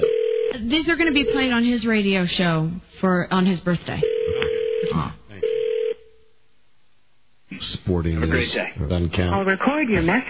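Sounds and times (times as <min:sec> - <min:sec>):
telephone ringing tone as a call rings through to voicemail: 0:00.0 - 0:01.6, 0:04.0 - 0:06.1
speech: 0:00.6 - 0:05.2, 0:07.9 - 0:10.2.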